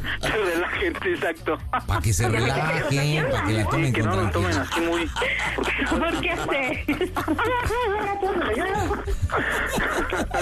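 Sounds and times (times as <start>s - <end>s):
laughter: 0.0s - 10.3s
speech: 0.3s - 10.3s
woman crying and sobbing: 3.1s - 10.3s.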